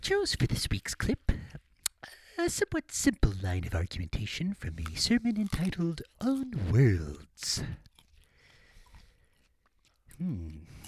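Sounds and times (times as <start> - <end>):
speech: 0.0 - 1.6, 2.4 - 7.9, 10.2 - 10.8
chewing: 4.6 - 10.8.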